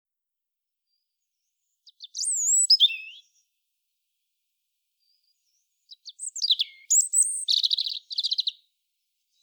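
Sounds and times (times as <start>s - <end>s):
European robin singing: 0.9s - 3.5s, 5.0s - 8.7s.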